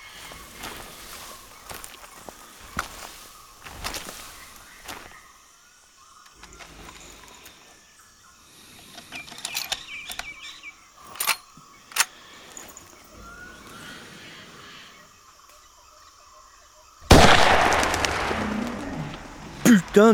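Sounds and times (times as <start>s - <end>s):
metallic clicks: 8.8s - 13.0s
loud gunshot from an antique firearm: 17.1s - 19.7s
speech: 20.0s - 20.1s.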